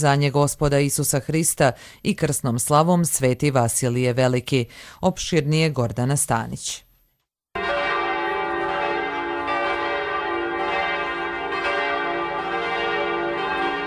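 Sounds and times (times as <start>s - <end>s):
speech: 0.0s - 6.8s
church bells ringing: 7.6s - 13.8s.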